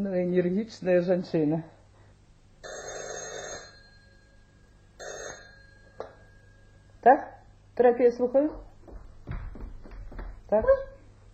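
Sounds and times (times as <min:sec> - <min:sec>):
speech: 0:00.0 - 0:01.8, 0:07.0 - 0:08.7, 0:10.5 - 0:10.9
telephone bell ringing: 0:02.6 - 0:06.9.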